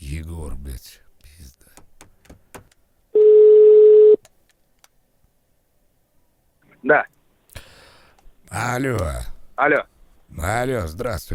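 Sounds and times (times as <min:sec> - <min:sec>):
speech: 0:00.2 - 0:01.1, 0:08.8 - 0:11.3
telephone ringback tone while placing a call: 0:03.2 - 0:04.2.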